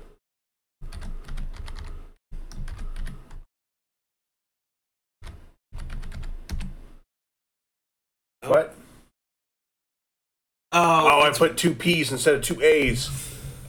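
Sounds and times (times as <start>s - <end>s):
typing on a computer keyboard: 0.8s - 3.4s, 5.2s - 6.7s
speech: 8.4s - 8.8s, 10.8s - 13.6s.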